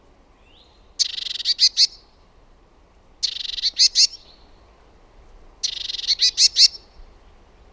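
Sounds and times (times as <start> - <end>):
great tit calls, buzzy burst and sharp notes: 0.4 - 2.1, 3.2 - 4.7, 5.6 - 7.0.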